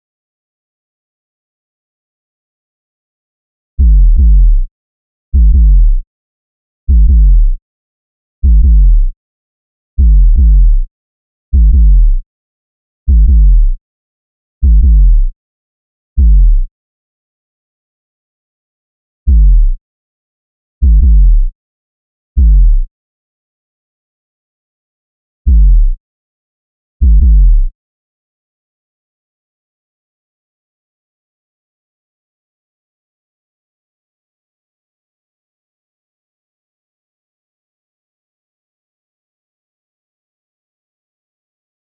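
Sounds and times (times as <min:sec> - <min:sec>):
kick drum beats: 0:03.8 - 0:04.7, 0:05.4 - 0:06.0, 0:06.9 - 0:07.6, 0:08.4 - 0:09.1, 0:10.0 - 0:10.8, 0:11.5 - 0:12.2, 0:13.1 - 0:13.8, 0:14.6 - 0:15.3, 0:16.2 - 0:16.7, 0:19.3 - 0:19.8, 0:20.8 - 0:21.5, 0:22.4 - 0:22.9, 0:25.5 - 0:26.0, 0:27.0 - 0:27.7.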